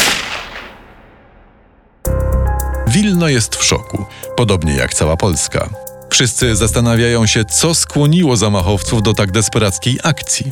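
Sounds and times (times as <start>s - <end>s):
pistol shot: 0.0s - 2.0s
speech: 3.0s - 10.4s.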